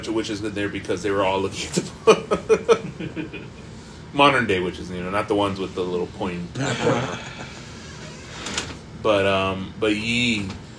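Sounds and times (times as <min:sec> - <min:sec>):
speech: 0:00.0 - 0:07.6, 0:09.0 - 0:10.6
laughter: 0:01.9 - 0:03.7, 0:06.6 - 0:07.9
chair creaking and squeaking: 0:07.7 - 0:08.9.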